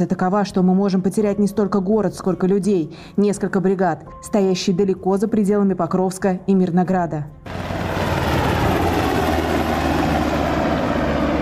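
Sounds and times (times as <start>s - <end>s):
speech: 0.0s - 7.8s
Black Hawk helicopter flying: 7.4s - 11.3s.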